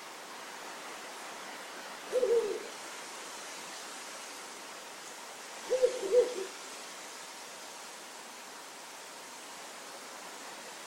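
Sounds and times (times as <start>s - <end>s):
faint steady hiss: 0.0s - 10.8s
Ural owl low wavering double hoot: 2.1s - 2.7s, 5.7s - 6.6s.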